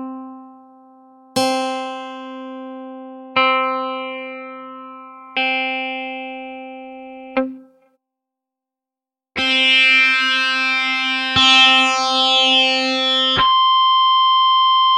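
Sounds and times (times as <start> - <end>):
guitars: 1.4 - 7.9, 9.4 - 14.8.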